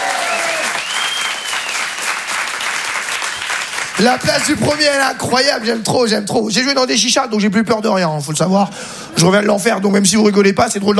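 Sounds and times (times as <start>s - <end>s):
audience applause and cheering at a French stand-up comedy show: 0.0s - 5.2s
whistle: 0.7s - 1.9s
speech: 4.0s - 10.9s.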